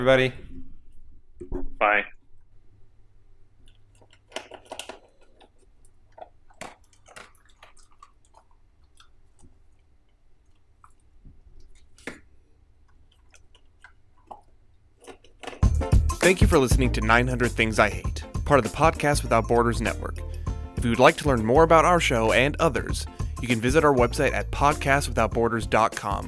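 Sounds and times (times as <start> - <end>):
speech: 0.0 - 0.4, 1.8 - 2.1, 16.2 - 26.2
pet chewing and crunching its food: 3.6 - 15.8.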